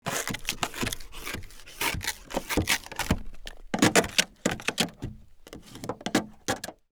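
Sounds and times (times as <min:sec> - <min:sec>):
ice scraper on window: 0:00.0 - 0:06.8.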